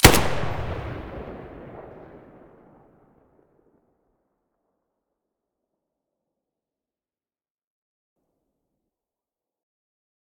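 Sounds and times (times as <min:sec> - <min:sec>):
Galil rifle muzzle blast: 0:00.0 - 0:02.2.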